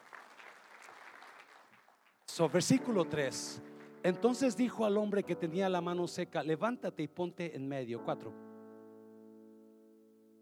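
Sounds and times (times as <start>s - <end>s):
audience applauding: 0.0s - 4.5s
speech: 2.4s - 8.4s.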